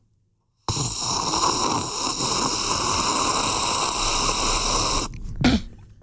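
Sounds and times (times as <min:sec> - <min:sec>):
loud slurp of the first mouthful of coffee: 0:00.7 - 0:05.2
sharp breath or swallow: 0:00.7 - 0:05.2.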